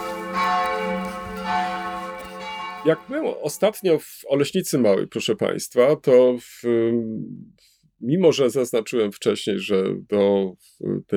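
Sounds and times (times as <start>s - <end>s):
large bell ringing: 0.0s - 4.0s
speech: 2.8s - 11.1s.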